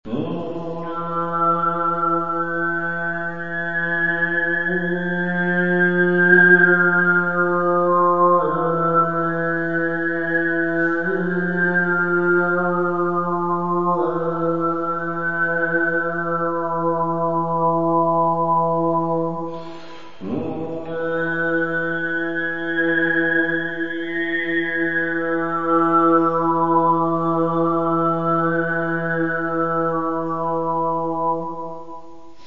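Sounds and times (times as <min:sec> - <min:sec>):
didgeridoo playing a bird melody: 0:00.1 - 0:31.8.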